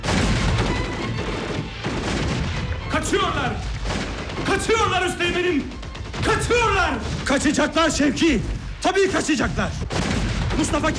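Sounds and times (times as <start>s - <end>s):
gunfire volley during a battle: 0.0s - 10.9s
speech: 3.0s - 3.8s, 4.4s - 10.9s.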